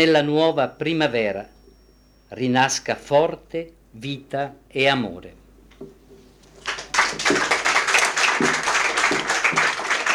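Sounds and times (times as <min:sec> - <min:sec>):
speech: 0:00.0 - 0:01.6, 0:02.3 - 0:06.0
audience applause after a poem at a poetry reading: 0:06.6 - 0:10.1.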